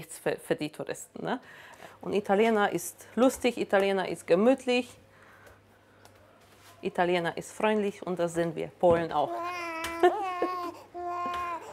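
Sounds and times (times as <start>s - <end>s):
speech: 0.0s - 5.0s, 6.8s - 9.6s
hungry four-month-old baby boy crying: 9.3s - 11.7s.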